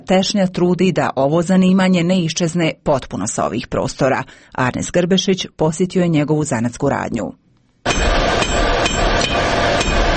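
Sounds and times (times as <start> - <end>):
speech: 0.1 - 8.0
blacksmith's hammer striking red-hot iron in a small forge: 7.8 - 10.1.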